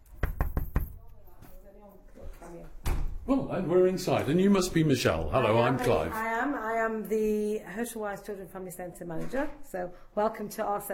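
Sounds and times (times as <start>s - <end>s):
firm knocking on a door: 0.0s - 1.0s
speech: 2.0s - 10.9s.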